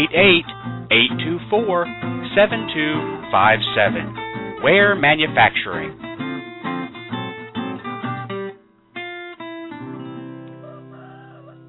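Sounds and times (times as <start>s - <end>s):
speech: 0.0s - 6.0s
rooster crowing: 10.5s - 11.6s.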